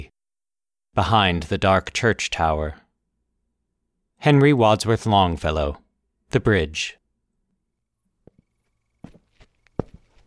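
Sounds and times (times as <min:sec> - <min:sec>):
speech: 0:01.0 - 0:02.8, 0:04.2 - 0:07.0
boot heels thumping on pavement: 0:08.2 - 0:08.4, 0:09.0 - 0:10.2.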